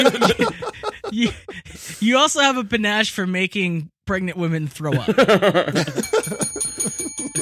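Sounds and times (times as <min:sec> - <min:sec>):
laughter: 0:00.0 - 0:01.8, 0:04.9 - 0:07.3
speech: 0:01.2 - 0:06.4
fixed previously broken bell ringing in a rapid rattle: 0:06.0 - 0:07.3.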